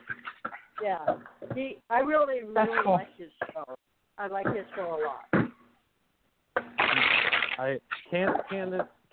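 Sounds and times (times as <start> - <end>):
speech: 0.8 - 5.4, 7.6 - 9.1
playing cards being shuffled: 6.8 - 7.6.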